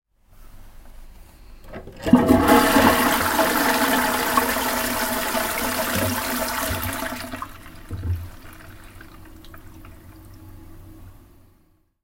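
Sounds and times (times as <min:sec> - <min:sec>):
rinsing water: 0:01.6 - 0:10.5.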